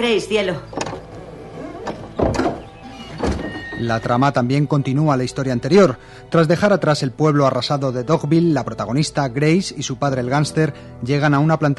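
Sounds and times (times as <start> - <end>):
speech: 0.0 - 0.8, 3.8 - 11.7
door creaking open on a stage set: 0.6 - 4.5.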